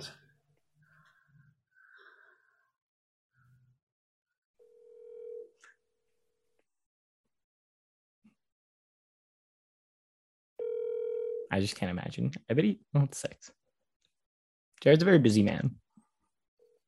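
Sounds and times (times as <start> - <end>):
phone call ringing tone: 4.6 - 5.6, 10.6 - 11.5
speech: 11.5 - 13.6, 14.8 - 15.8.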